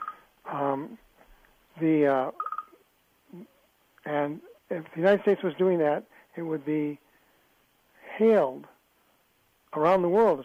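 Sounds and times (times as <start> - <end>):
mobile phone tones: 0.0 - 0.3, 2.4 - 2.8
speech: 0.5 - 1.1, 1.8 - 2.4, 3.3 - 7.0, 8.2 - 8.7, 9.7 - 10.4.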